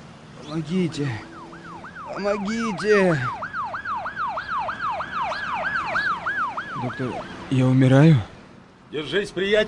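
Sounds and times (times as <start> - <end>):
speech: 0.5 - 1.3, 2.1 - 3.4, 6.8 - 8.3, 8.9 - 9.6
ambulance siren: 1.1 - 7.5.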